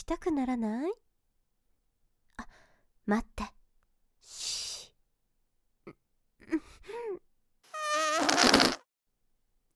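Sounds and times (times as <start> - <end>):
speech: 0.0 - 1.0, 3.1 - 3.5
loud buzzy sputtering fart: 7.7 - 8.8.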